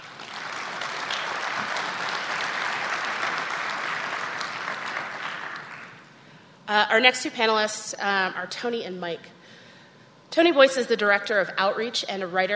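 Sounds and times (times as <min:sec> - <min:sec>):
sustained audience applause: 0:00.0 - 0:06.0
speech: 0:06.7 - 0:09.4, 0:10.4 - 0:12.5.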